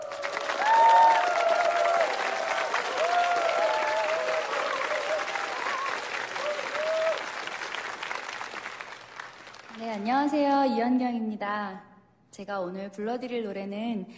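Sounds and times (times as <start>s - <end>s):
audience applauding a young singer at a live performance: 0.0s - 10.3s
speech: 10.2s - 14.1s.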